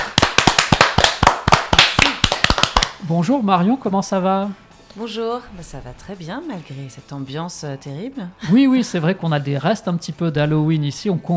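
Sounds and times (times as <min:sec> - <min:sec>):
audience applause welcoming a guest songwriter: 0:00.2 - 0:02.9
speech: 0:03.1 - 0:11.3.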